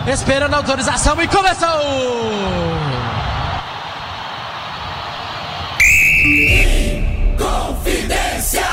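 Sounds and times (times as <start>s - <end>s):
speech: 0.0s - 3.2s
stadium crowd roaring: 0.0s - 8.7s
referee's whistle blast for kickoff: 5.8s - 7.4s.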